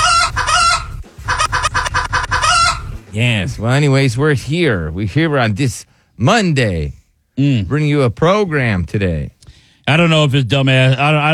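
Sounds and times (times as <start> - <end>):
rooster crowing: 0.0 - 3.0
speech: 3.2 - 11.3.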